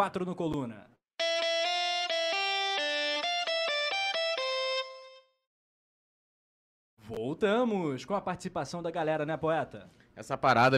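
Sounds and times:
speech: 0.0 - 0.9, 7.1 - 10.7
short bright electronic synth jingle: 1.2 - 5.4.

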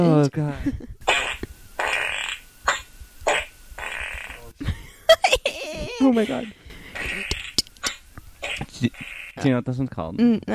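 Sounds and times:
speech: 0.0 - 1.1, 6.0 - 7.3, 8.8 - 10.5
loud wet fart sound effects: 1.0 - 4.6, 6.3 - 9.4.

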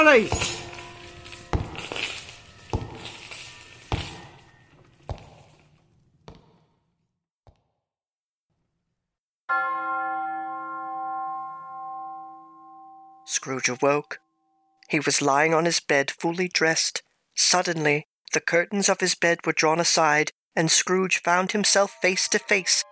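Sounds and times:
speech: 0.0 - 0.5, 13.4 - 14.2, 14.9 - 22.9
steady series of clanging strikes: 0.0 - 6.7
loud deep church bell toll: 9.5 - 13.2.

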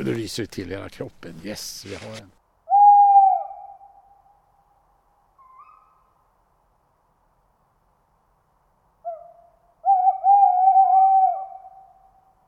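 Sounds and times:
speech: 0.0 - 2.4
owl hooting: 2.7 - 4.2, 5.4 - 6.2, 9.0 - 12.4.

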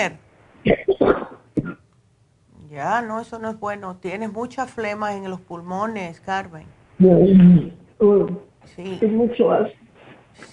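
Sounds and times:
speech: 0.0 - 1.4, 2.7 - 9.8
woman coughing harshly: 0.7 - 1.8.

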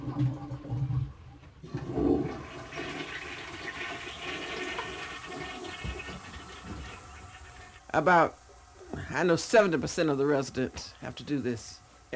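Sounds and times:
bucket of water poured into a toilet: 0.0 - 7.9
speech: 0.2 - 0.4, 8.0 - 8.4, 9.2 - 12.1.

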